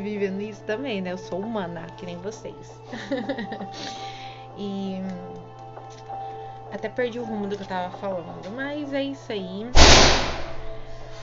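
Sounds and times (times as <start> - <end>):
speech: 0.0 - 6.0, 6.7 - 10.4
laughter: 2.9 - 4.0
door slamming shut: 9.8 - 10.9.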